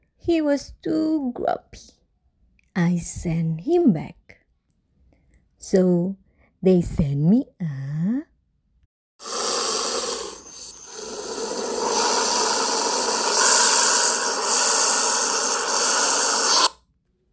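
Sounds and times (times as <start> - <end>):
speech: 0.2 - 2.0, 2.8 - 4.3, 5.6 - 8.3
snake hissing: 9.2 - 16.8.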